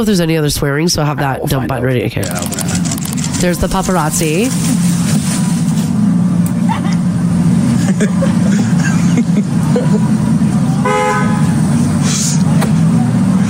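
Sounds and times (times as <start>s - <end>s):
speech: 0.0s - 4.9s, 8.0s - 8.6s, 9.4s - 10.3s
street noise: 0.0s - 13.4s
car engine idling and rolling past: 2.0s - 13.4s
laughter: 7.6s - 10.7s
short car horn toot: 10.8s - 11.6s.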